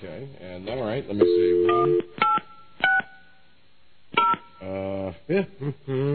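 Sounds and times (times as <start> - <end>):
speech: 0.2 - 2.3, 5.3 - 6.1
phone keypad tones beeping: 1.2 - 3.1.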